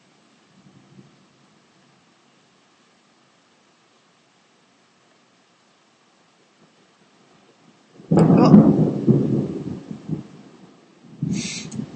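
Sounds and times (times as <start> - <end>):
low heavy thunder rumbling with a loud crack: 8.0 - 11.9.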